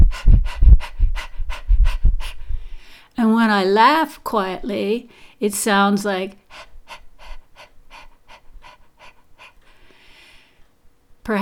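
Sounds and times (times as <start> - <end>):
person panting like a dog: 0.0 - 3.2, 6.4 - 10.7
speech: 3.5 - 6.7, 11.2 - 11.4.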